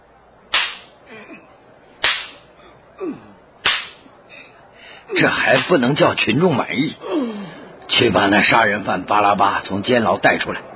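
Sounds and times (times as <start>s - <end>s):
loud sharp whip lashes striking a person: 0.5s - 1.0s, 2.0s - 2.5s, 3.6s - 4.1s, 5.6s - 5.8s
faint sounds: 1.0s - 8.6s
speech: 3.0s - 3.3s, 5.1s - 10.7s.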